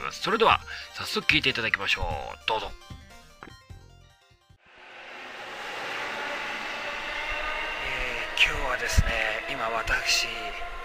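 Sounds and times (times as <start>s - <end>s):
speech: 0.1s - 3.0s, 8.4s - 10.8s
train roar at a railway station platform: 4.6s - 10.8s.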